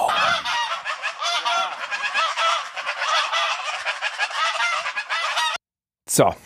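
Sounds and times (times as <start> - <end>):
flock of geese honking: 0.0 - 5.6
speech: 6.2 - 6.4.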